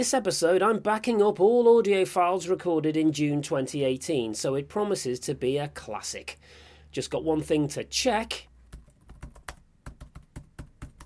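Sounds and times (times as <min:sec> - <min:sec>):
speech: 0:00.0 - 0:08.5
brisk typing on a computer keyboard: 0:08.7 - 0:11.0.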